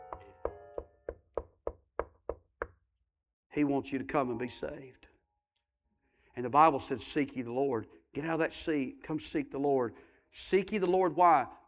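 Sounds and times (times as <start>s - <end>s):
knocking on wood: 0.0s - 2.8s
speech: 3.6s - 5.1s, 6.4s - 11.6s.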